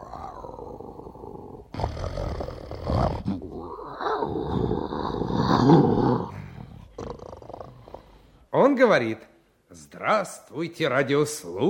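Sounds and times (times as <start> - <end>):
lion roaring: 0.0 - 8.0
speech: 8.8 - 11.6.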